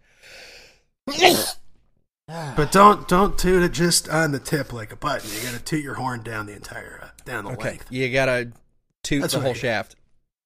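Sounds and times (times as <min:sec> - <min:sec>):
human sneeze: 0:01.1 - 0:01.6
speech: 0:02.6 - 0:10.4.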